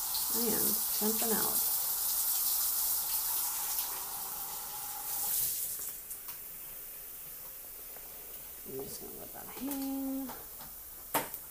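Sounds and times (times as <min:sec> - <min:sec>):
cold water running from a partly turned on bathroom tap: 0:00.0 - 0:06.0
speech: 0:00.3 - 0:01.7, 0:08.8 - 0:10.5.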